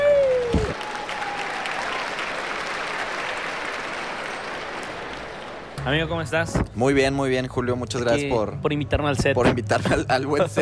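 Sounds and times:
applause from a group: 0.0 - 5.8
speech: 5.9 - 10.6.

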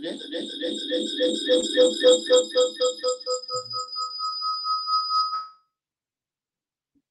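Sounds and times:
electronic feedback between two devices: 0.0 - 5.5.

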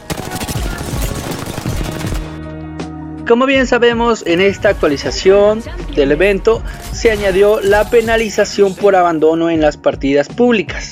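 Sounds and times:
rapid automatic gunfire from a video game weapon: 0.0 - 2.4
speech: 3.3 - 10.9.

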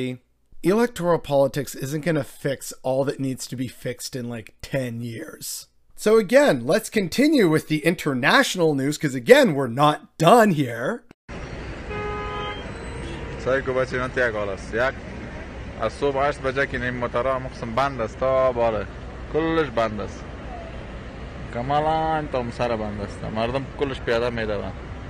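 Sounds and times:
speech: 0.0 - 11.1, 13.4 - 15.1, 15.8 - 20.3, 21.5 - 24.9
steady rumble of idling traffic: 11.3 - 25.0
car horns honking on a congested street: 11.6 - 13.8.

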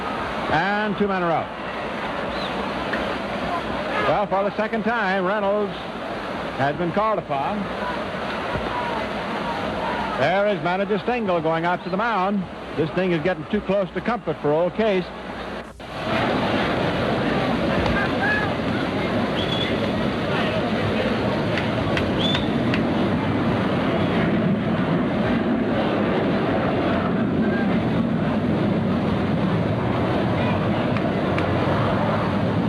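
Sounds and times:
faint murmur of voices: 0.0 - 32.6
jet aircraft flying high overhead: 0.0 - 32.6
speech: 0.5 - 1.8, 4.0 - 6.0, 6.6 - 8.0, 10.2 - 15.2.

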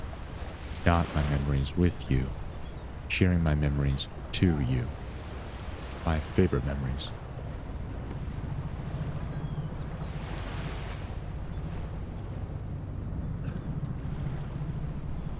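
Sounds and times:
boat wake sloshing and lapping against something: 0.0 - 15.3
gusts of wind noise: 0.0 - 15.3
speech: 0.8 - 2.4, 3.1 - 5.0, 6.0 - 7.2.

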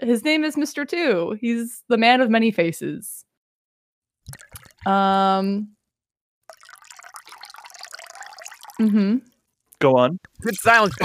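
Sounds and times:
speech: 0.0 - 3.2, 4.3 - 5.8, 8.8 - 11.0
drink pouring into a glass: 4.3 - 4.9, 6.5 - 9.0, 10.4 - 11.0.

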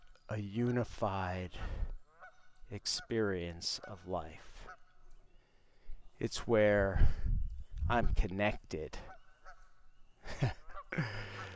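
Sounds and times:
speech: 0.3 - 2.0, 2.7 - 4.7, 6.2 - 7.3, 7.9 - 9.1, 10.3 - 11.3
geese honking: 2.0 - 5.1, 8.9 - 11.5.

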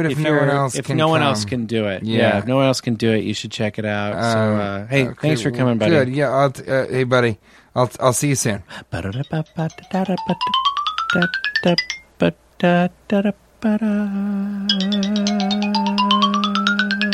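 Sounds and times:
speech: 0.0 - 16.0
electronic phone ringtone with bright melodic beeps: 9.2 - 12.1, 14.7 - 17.1.

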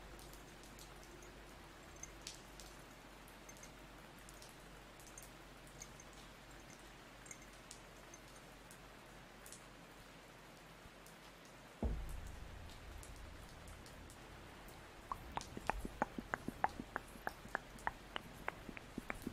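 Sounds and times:
steady soft rain: 0.0 - 19.3
rain drops pattering on a hard surface: 11.8 - 19.3.

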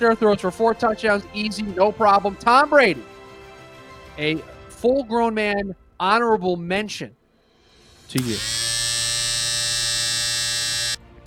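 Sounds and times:
speech: 0.0 - 3.2, 4.2 - 7.2, 8.1 - 8.6
electric body hair trimmer buzzing: 8.2 - 11.2.

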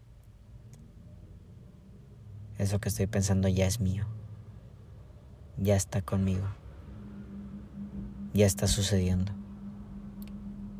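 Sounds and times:
low engine rumble inside a moving car at night: 0.0 - 10.7
speech: 2.6 - 4.2, 5.6 - 6.6, 8.4 - 9.4.

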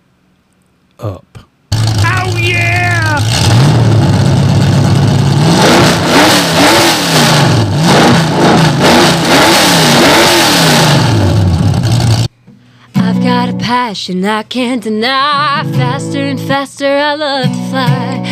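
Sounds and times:
speech: 1.0 - 1.3, 2.2 - 3.8, 13.7 - 18.3
race car engine starting, idling and revving: 1.7 - 12.3.

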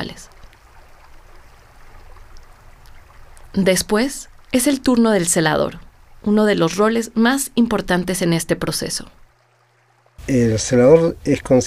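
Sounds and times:
speech: 0.0 - 0.3, 3.6 - 9.2, 10.3 - 11.6
water flowing through an irrigation channel among farm plots: 0.0 - 11.6.

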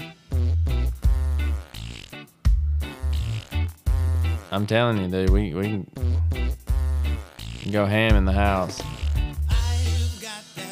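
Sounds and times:
buzzing fart sound effects in a reggae rhythm: 0.3 - 2.1, 2.8 - 4.7, 6.0 - 9.4
speech: 4.5 - 6.0, 7.6 - 9.0.

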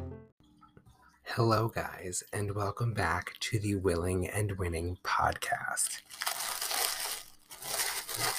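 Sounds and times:
speech: 1.4 - 6.3
tissue paper crinkling while wrapping presents: 5.9 - 8.3.

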